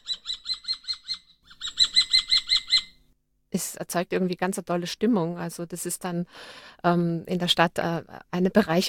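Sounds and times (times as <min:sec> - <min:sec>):
common kestrel giving sharp high kee-kee-kee calls: 0:00.0 - 0:03.0
speech: 0:03.6 - 0:08.8.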